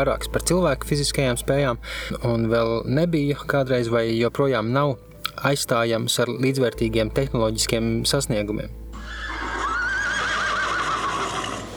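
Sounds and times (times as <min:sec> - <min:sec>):
speech: 0:00.0 - 0:09.2
low rumble: 0:00.0 - 0:09.8
horse neighing: 0:09.0 - 0:11.7.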